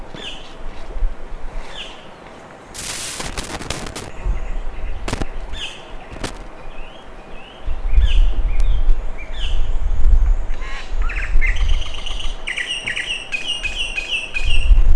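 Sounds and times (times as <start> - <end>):
bird calls with short chirps and downslurred notes: 0.1 - 0.6, 1.6 - 2.4, 3.7 - 9.7, 10.4 - 14.8.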